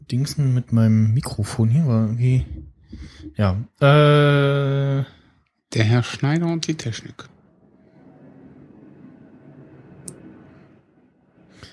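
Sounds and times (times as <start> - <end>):
speech: 0.1 - 7.3
low airplane drone through an open doorway: 7.6 - 11.7.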